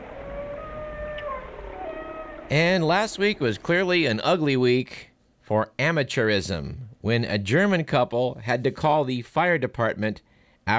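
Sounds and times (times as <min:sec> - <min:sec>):
whale calling with long tonal moans and gliding whistles: 0:00.0 - 0:02.6
speech: 0:02.5 - 0:10.7.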